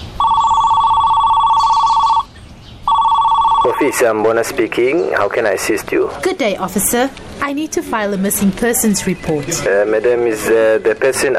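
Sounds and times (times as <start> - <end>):
electronic ringback tone through a phone on speaker: 0.2 - 2.3, 2.9 - 4.2
speech: 3.6 - 11.3.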